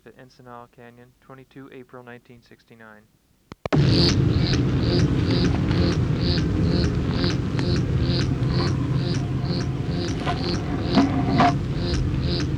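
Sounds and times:
continuous low hum: 0:00.0 - 0:12.5
speech: 0:00.1 - 0:03.2, 0:10.3 - 0:10.8
male black-chinned hummingbird dive display buzzy pulses: 0:03.8 - 0:12.5.

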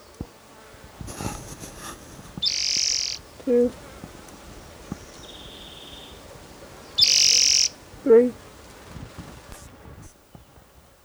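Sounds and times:
male bird loud sharp high-pitched call: 0:02.4 - 0:03.2, 0:07.0 - 0:07.8
speech: 0:03.4 - 0:03.8, 0:08.1 - 0:08.4.

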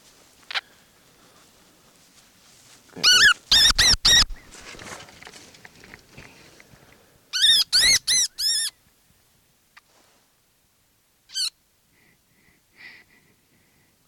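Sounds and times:
baby wood rat squeaking: 0:03.0 - 0:04.4, 0:07.4 - 0:08.7, 0:11.3 - 0:11.5.

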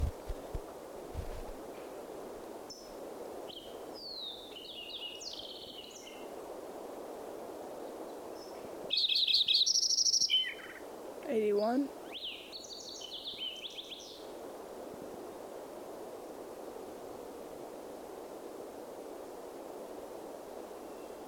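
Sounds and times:
faint steady hiss: 0:00.0 - 0:21.2
Fox Sparrow song among other birds: 0:02.7 - 0:06.3, 0:08.4 - 0:10.8, 0:11.6 - 0:14.3, 0:20.8 - 0:21.2
speech: 0:11.4 - 0:12.0.

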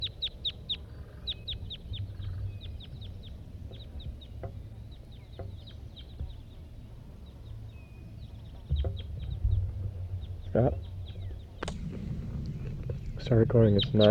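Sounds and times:
low steady rumble: 0:00.9 - 0:14.1
speech: 0:10.6 - 0:10.8, 0:13.3 - 0:14.1
male red crossbill calling in flight with sharp high kip notes: 0:11.6 - 0:14.1.

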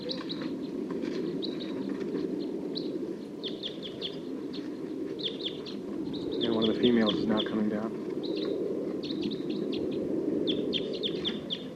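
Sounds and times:
wild birds chirping: 0:00.0 - 0:11.7
speech: 0:06.8 - 0:08.0.

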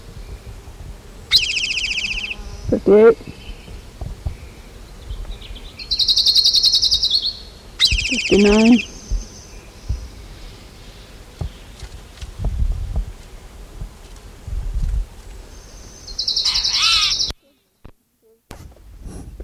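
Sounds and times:
orange-crowned warbler song: 0:01.3 - 0:12.4, 0:15.3 - 0:17.5
speech: 0:02.7 - 0:03.4, 0:08.3 - 0:08.9
dull low thumps: 0:03.2 - 0:05.6, 0:07.9 - 0:10.4, 0:11.3 - 0:15.2.

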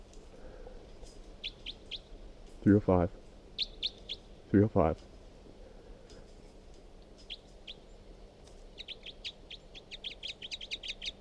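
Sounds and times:
low hiss: 0:00.0 - 0:11.1
bird chirps: 0:01.4 - 0:02.1, 0:03.6 - 0:04.3, 0:07.2 - 0:08.0, 0:08.7 - 0:11.1
speech: 0:02.6 - 0:03.2, 0:04.5 - 0:05.1.

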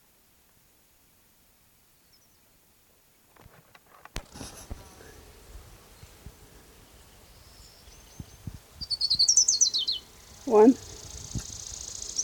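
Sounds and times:
orange-crowned warbler song: 0:01.9 - 0:02.6, 0:05.0 - 0:12.2
soft rustles: 0:03.3 - 0:06.4
speech: 0:10.5 - 0:10.9.

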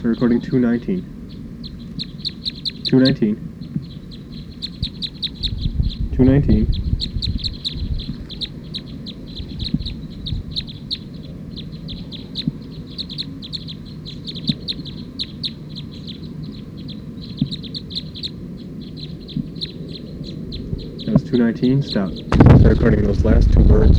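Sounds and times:
speech: 0:00.0 - 0:01.2, 0:02.9 - 0:03.5, 0:06.2 - 0:06.9, 0:21.3 - 0:23.9
rapid high-pitched bird chirps: 0:00.0 - 0:21.2
low rumble: 0:22.4 - 0:23.9.

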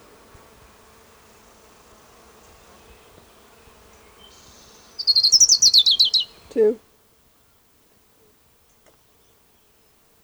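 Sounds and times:
ground warbler song: 0:02.4 - 0:06.8
speech: 0:06.5 - 0:06.9.

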